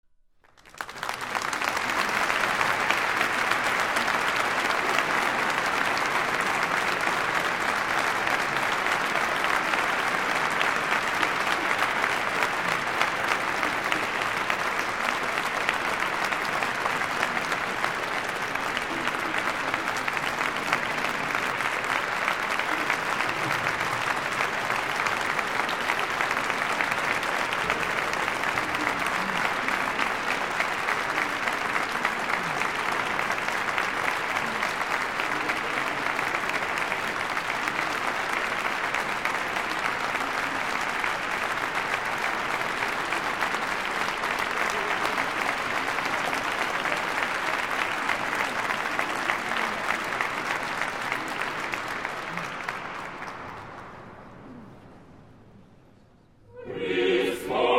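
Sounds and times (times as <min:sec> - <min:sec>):
crowd applauding: 0:00.4 - 0:54.6, 0:56.5 - 0:57.7
polyphonic choir singing: 0:56.5 - 0:57.7.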